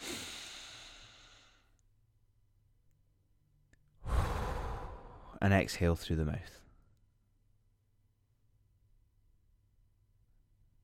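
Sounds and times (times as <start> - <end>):
big inhale through the nose in a guided breathing exercise: 0.0 - 1.7, 4.0 - 5.4
speech: 5.4 - 6.6.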